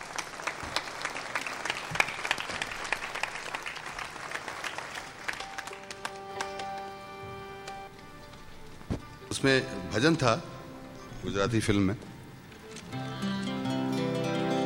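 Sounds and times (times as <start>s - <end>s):
audience applauding: 0.0s - 7.9s
sustained musical tones: 5.3s - 14.6s
speech: 9.4s - 10.5s, 11.2s - 12.1s.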